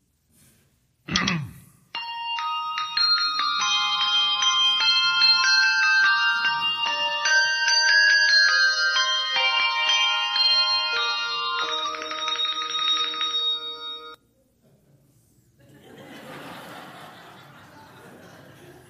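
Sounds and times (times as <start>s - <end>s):
bell choir playing a bright Christmas melody in a TV commercial: 2.0s - 14.2s
laughter: 15.6s - 18.8s.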